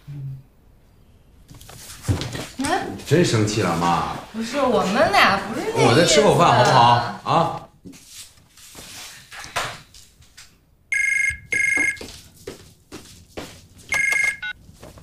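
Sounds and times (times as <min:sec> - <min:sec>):
shuffling noises: 0:01.5 - 0:03.2, 0:07.8 - 0:10.4, 0:11.6 - 0:15.0
speech: 0:02.7 - 0:08.0
telephone ringing in bright electronic bursts: 0:10.9 - 0:12.0, 0:13.9 - 0:14.6.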